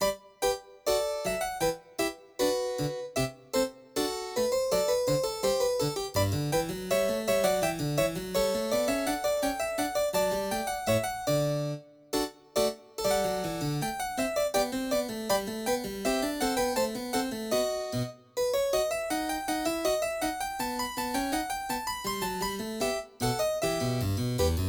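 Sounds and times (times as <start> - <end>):
harpsichord gavotte on Yamaha NP-30: 0.0 - 24.6.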